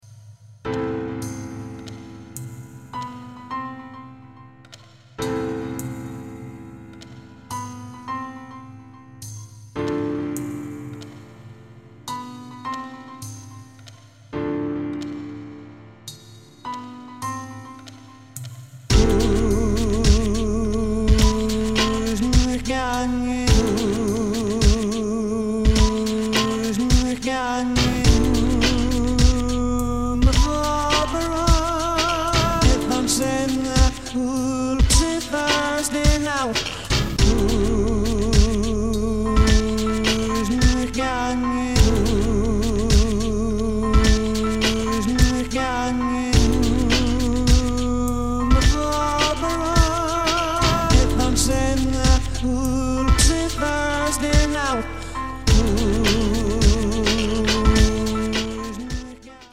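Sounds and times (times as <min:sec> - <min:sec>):
beautiful piano: 0:00.6 - 0:59.5.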